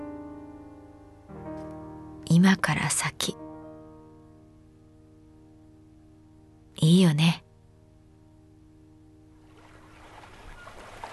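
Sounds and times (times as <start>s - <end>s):
speech: 2.3s - 3.4s, 6.8s - 7.4s
water lapping against rowboats on a pond: 9.5s - 11.1s.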